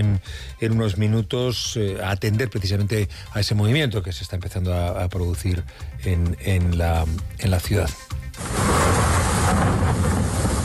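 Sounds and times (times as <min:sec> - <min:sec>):
speech: 0:00.0 - 0:08.6
deep low rumble: 0:08.4 - 0:10.6
heavy rain pouring from overnight storms: 0:08.4 - 0:10.6.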